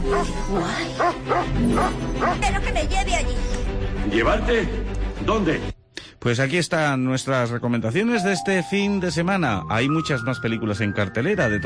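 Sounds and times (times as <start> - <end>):
dog barking with a whining whimpering edge: 0.1 - 0.4, 1.0 - 2.4
speech: 0.1 - 11.6.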